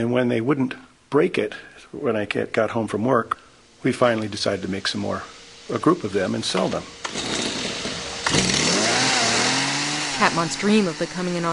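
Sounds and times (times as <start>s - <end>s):
speech: 0.0s - 7.4s, 10.2s - 11.5s
gas-powered GoPed scooter small engine buzzing, test-driven at a factory: 5.8s - 11.5s.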